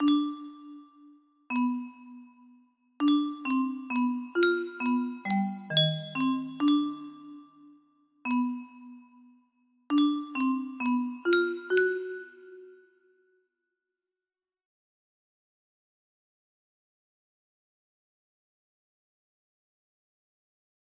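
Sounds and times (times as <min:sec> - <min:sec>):
music box: 0:00.0 - 0:13.0.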